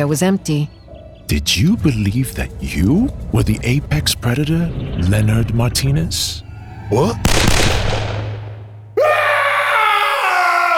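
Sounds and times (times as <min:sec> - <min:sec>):
speech: 0:00.0 - 0:07.8
low rumbling hum: 0:00.0 - 0:09.1
loud piercing scream: 0:06.4 - 0:10.7.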